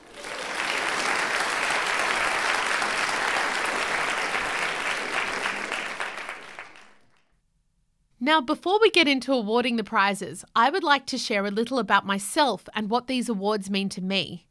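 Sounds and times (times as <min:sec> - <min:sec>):
large audience applauding at a television awards ceremony: 0:00.0 - 0:07.3
speech: 0:08.3 - 0:14.5.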